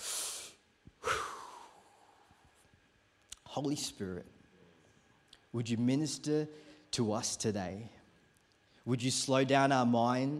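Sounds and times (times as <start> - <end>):
deep breath: 0.0 - 2.4
speech: 3.5 - 4.4, 5.5 - 8.0, 8.8 - 10.3.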